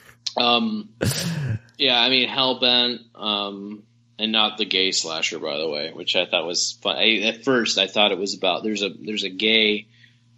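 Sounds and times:
speech: 0.4s - 10.3s
person yawning: 1.0s - 1.6s.

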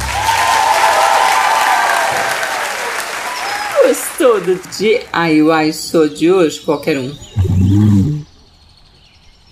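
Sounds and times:
crowd applauding: 0.0s - 5.5s
speech: 4.2s - 8.2s.

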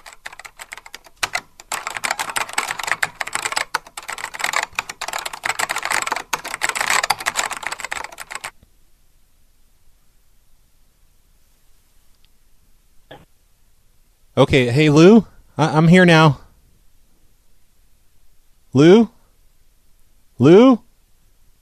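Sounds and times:
rapid typing on a computer keyboard: 0.0s - 8.6s
faint click: 12.1s - 12.4s
speech: 14.4s - 16.4s, 18.8s - 19.1s, 20.4s - 20.8s.

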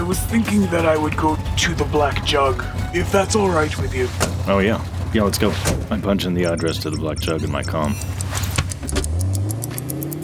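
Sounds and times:
car engine humming while driving: 0.0s - 10.2s
speech: 0.1s - 8.4s
light metallic jingling ticks: 6.2s - 10.2s.

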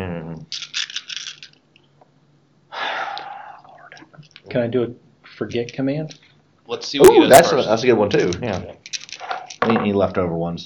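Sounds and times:
breathy rush of noise: 2.7s - 4.0s
speech: 4.5s - 8.8s, 9.6s - 10.6s
double handful of dice clattering onto a table: 8.3s - 9.9s.

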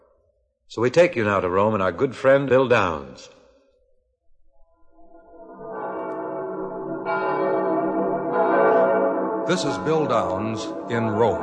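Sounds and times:
speech: 0.7s - 3.4s, 9.5s - 11.4s
church bells pealing for midnight mass: 5.5s - 11.4s.

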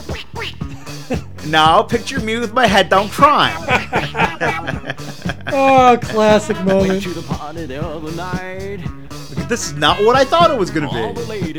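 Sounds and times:
nasal cartoonish duck voice quacking from a disco record: 0.0s - 1.4s, 3.0s - 4.8s, 5.5s - 7.3s, 9.4s - 11.4s
disco music from a record being played: 0.0s - 11.5s
laughter: 0.6s - 7.6s, 9.3s - 11.5s
speech: 1.1s - 11.5s.

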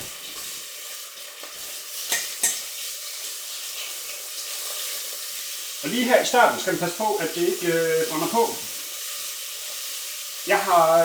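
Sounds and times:
pork frying in a pot with crackling fat: 0.0s - 11.0s
utensil clinking against the pot: 2.1s - 2.7s
speech: 5.8s - 8.7s, 10.5s - 11.0s.

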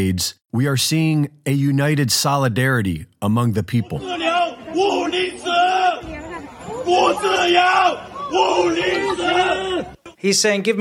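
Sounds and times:
speech: 0.0s - 5.5s, 6.9s - 10.7s
protester man shouting slogan: 3.6s - 6.0s, 6.8s - 10.7s
outdoor hubbub: 3.7s - 10.7s
crowd chanting in unison: 4.0s - 10.2s.

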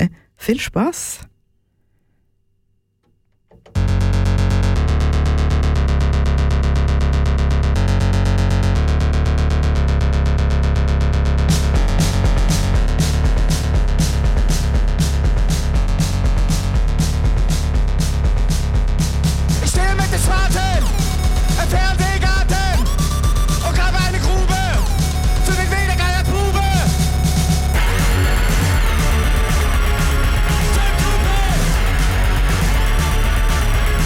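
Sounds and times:
speech: 0.0s - 1.3s
distorted guitars: 3.7s - 34.0s
dense rock track: 11.4s - 34.0s
driving drums: 11.5s - 34.0s.

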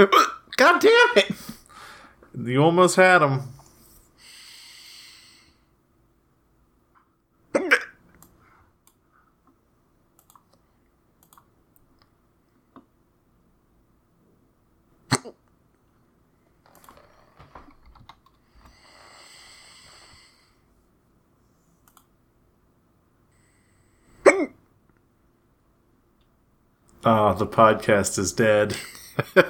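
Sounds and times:
speech: 0.0s - 1.4s, 2.4s - 3.6s, 27.0s - 29.4s
soft breathing: 1.5s - 2.3s, 3.5s - 5.8s, 8.4s - 9.4s, 18.4s - 21.8s, 23.3s - 24.2s
painful hiccups: 7.5s - 8.0s, 15.1s - 15.4s, 24.2s - 24.7s.

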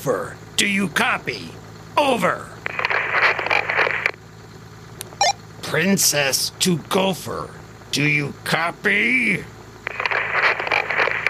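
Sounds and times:
speech: 0.0s - 2.5s, 5.7s - 9.6s
radio static interference from tunnels blocking a radio call: 2.6s - 4.2s, 9.8s - 11.2s.

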